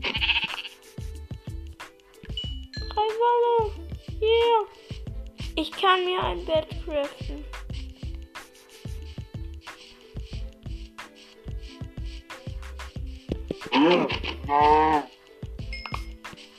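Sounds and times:
sheep bleating: 0:00.0 - 0:00.8, 0:13.7 - 0:15.1
rhythmic electronic background with soft thumping beats: 0:02.3 - 0:16.5
speech: 0:05.8 - 0:07.6, 0:13.9 - 0:14.9.

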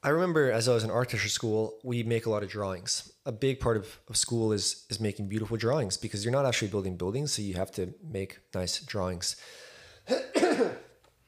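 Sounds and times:
speech: 0:00.0 - 0:10.8
man clearing his throat coated after drinking coffee: 0:10.1 - 0:11.0.

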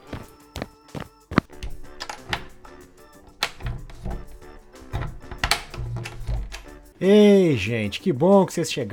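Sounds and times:
quick footsteps on a hard floor: 0:00.0 - 0:01.5
speech: 0:07.0 - 0:08.9.

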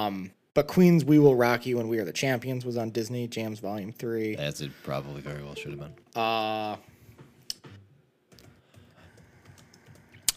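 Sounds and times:
speech: 0:00.0 - 0:06.9
typing on a computer keyboard: 0:08.3 - 0:10.3.

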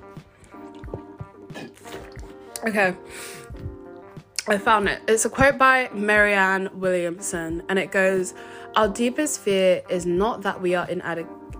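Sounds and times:
soft sips of water: 0:00.0 - 0:04.6
swallowing: 0:00.2 - 0:02.6
speech: 0:02.6 - 0:03.4, 0:04.5 - 0:11.5.

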